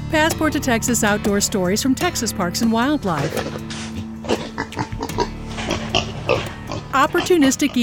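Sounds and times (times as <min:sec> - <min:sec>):
speech: 0:00.1 - 0:04.8, 0:06.3 - 0:07.8
pig grunting and snorting while raiding a campsite at night: 0:03.1 - 0:07.8.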